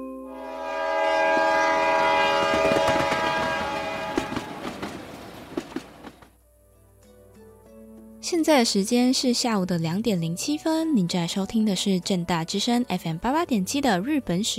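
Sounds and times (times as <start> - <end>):
express train horn-like tones: 0.3 - 4.9
express train departing with a rumbling roar: 0.3 - 6.4
clickety-clack rail clicks of an express train: 2.3 - 6.4
speech: 8.5 - 14.5.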